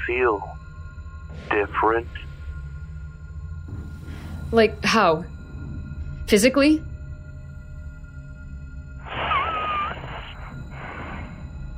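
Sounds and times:
low rumble: 0:00.0 - 0:11.7
speech: 0:00.1 - 0:00.6, 0:01.3 - 0:02.3, 0:04.5 - 0:05.4, 0:06.3 - 0:06.9
breathy exhale through the nose with a thin wavering whistle: 0:09.1 - 0:11.6.

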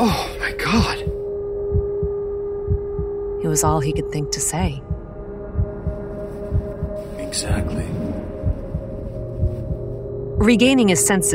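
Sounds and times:
constant droning hum: 0:00.6 - 0:11.3
low heartbeat thumping in a lub-dub rhythm: 0:00.8 - 0:11.3
speech: 0:03.6 - 0:05.0, 0:07.3 - 0:08.0, 0:10.4 - 0:11.3.

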